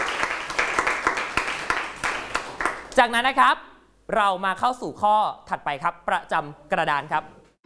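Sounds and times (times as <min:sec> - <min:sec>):
classroom applause for a group of students: 0:00.0 - 0:03.0
speech: 0:03.0 - 0:07.4.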